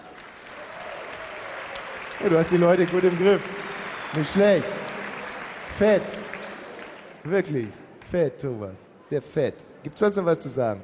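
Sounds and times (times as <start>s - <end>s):
crowd applause with many hands clapping: 0.0s - 7.4s
speech: 2.2s - 4.8s, 5.8s - 6.2s, 7.2s - 10.8s.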